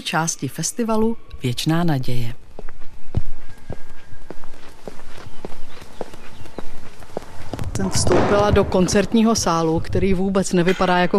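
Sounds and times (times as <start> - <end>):
speech: 0.0 - 2.4, 7.8 - 11.1
crisp footsteps walking: 2.2 - 10.6.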